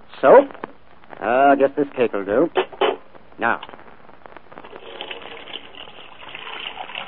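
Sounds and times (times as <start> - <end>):
speech: 0.2 - 0.6, 1.2 - 2.8, 3.4 - 3.8
water pouring from a tap into a dishpan in a kitchen for washing dishes: 4.6 - 7.0.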